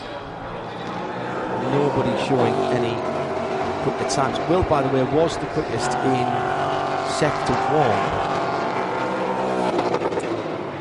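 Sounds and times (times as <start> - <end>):
race car engine on the rev limiter passing the start-finish line: 0.0 - 10.7
speech: 1.7 - 8.3.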